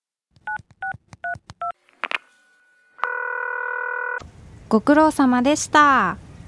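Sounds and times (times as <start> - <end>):
steady continuous phone ringing or line tone: 2.3 - 4.2
brief phone line click: 3.0 - 4.2
speech: 4.7 - 6.2.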